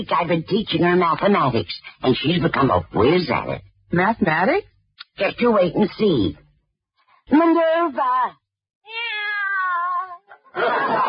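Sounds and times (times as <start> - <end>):
speech: 0.0 - 6.4, 7.3 - 9.0, 10.6 - 11.0
cat meowing: 8.9 - 10.4
laughter: 10.3 - 11.0.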